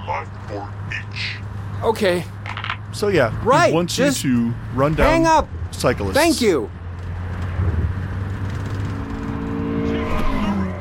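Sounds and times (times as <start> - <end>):
speech: 0.5 - 6.8
video game car engine revving: 3.0 - 10.8.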